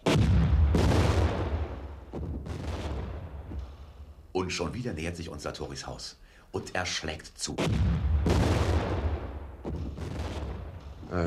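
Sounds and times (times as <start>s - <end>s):
gunshots: 0.0s - 4.1s, 7.5s - 11.1s
speech: 4.4s - 8.1s.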